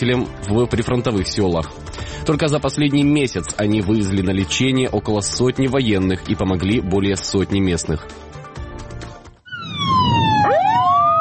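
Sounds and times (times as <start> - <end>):
speech: 0.0 - 8.3
ambulance siren wailing: 9.4 - 11.1.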